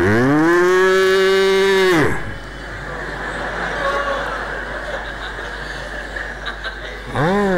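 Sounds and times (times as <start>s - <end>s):
cow mooing: 0.0s - 2.3s, 7.1s - 7.5s
steady outdoor noise: 0.0s - 7.5s
laughter: 2.4s - 7.5s.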